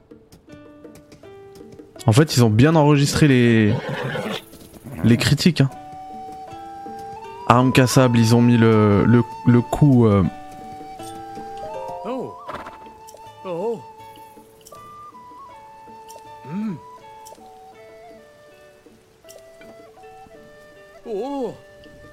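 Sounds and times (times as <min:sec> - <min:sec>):
horse hooves clip-clopping: 0:00.0 - 0:13.4, 0:14.0 - 0:22.1
steady music: 0:00.0 - 0:22.1
speech: 0:02.0 - 0:04.4, 0:05.0 - 0:05.8, 0:07.5 - 0:10.4
horse whinnying: 0:03.6 - 0:05.3, 0:12.2 - 0:13.4
soft voices: 0:16.4 - 0:16.9, 0:21.0 - 0:21.7.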